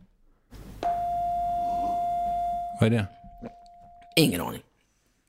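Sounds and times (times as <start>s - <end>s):
single sustained keyboard note: 0.8s - 4.2s
speech: 2.8s - 3.6s, 4.2s - 4.7s.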